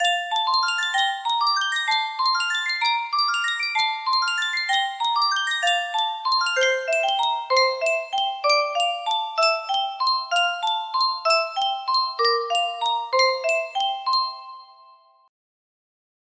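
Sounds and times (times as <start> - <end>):
music box melody in C major: 0.0 - 15.3.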